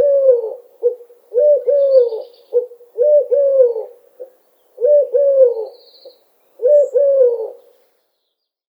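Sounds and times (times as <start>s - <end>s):
Eurasian collared dove cooing in three-syllable phrases: 0.0s - 4.0s, 4.8s - 5.9s, 6.6s - 7.7s.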